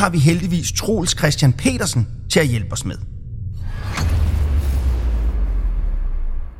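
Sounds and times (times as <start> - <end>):
speech: 0.0 - 3.1
deep rumbling explosion boom for Big Bang: 3.2 - 6.5.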